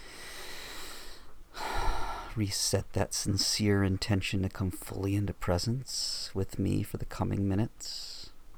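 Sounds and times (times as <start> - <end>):
deep breath drawn slowly: 0.0 - 2.4
speech: 2.4 - 8.2.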